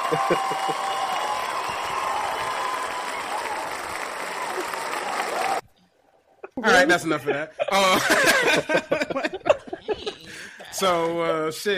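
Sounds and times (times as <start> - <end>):
laughter: 0.0 - 1.1, 6.5 - 11.5
crowd applause sound effect: 0.0 - 5.6
scattered cheers: 0.0 - 5.6
speech: 0.1 - 1.0, 6.6 - 9.3, 10.8 - 11.7.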